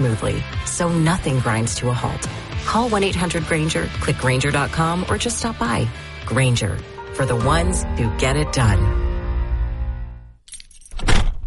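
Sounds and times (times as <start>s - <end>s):
speech: 0.0s - 9.0s
car keys jangling: 10.4s - 11.3s.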